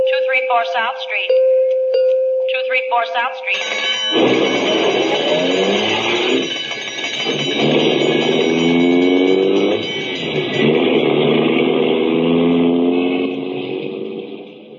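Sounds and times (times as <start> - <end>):
speech: 0.4 - 1.6, 2.5 - 6.6
old ambulance engine revving as it accelerates away on a call: 3.6 - 14.7.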